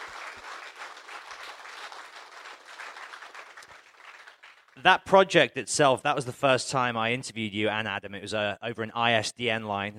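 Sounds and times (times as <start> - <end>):
crowd applauding: 0.0 - 4.8
speech: 4.8 - 9.9.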